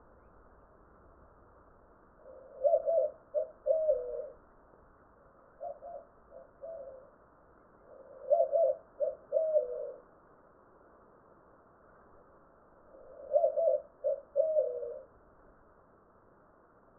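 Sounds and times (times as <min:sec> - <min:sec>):
Zenaida asiatica calling: 0:02.2 - 0:04.4, 0:05.5 - 0:07.2, 0:07.8 - 0:10.1, 0:12.9 - 0:15.2.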